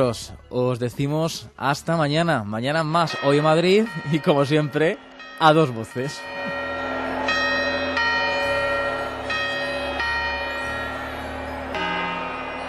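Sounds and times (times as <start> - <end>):
speech: 0.0 - 6.5
church bells ringing: 2.8 - 12.6.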